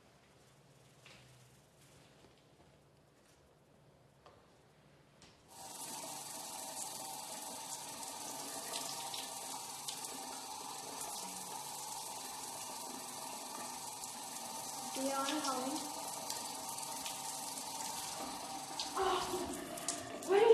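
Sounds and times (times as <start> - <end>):
shower water running: 5.5 - 20.5
speech: 15.1 - 15.9.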